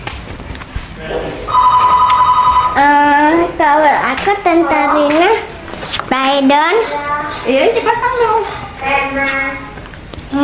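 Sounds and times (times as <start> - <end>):
speech: 1.0 - 1.4, 2.8 - 5.5, 6.1 - 9.7
telephone ringing with electronic trill: 1.5 - 2.9.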